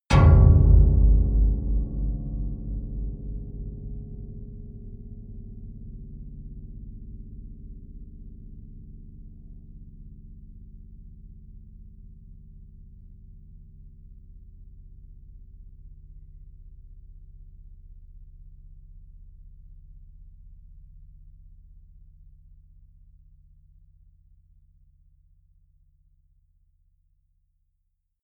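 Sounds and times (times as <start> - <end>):
deep sustained piano note: 0.1 - 10.2.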